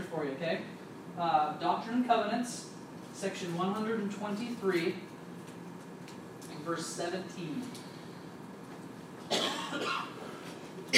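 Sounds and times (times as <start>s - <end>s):
speech: 0.2s - 5.1s, 6.6s - 7.9s
person coughing: 9.3s - 10.9s.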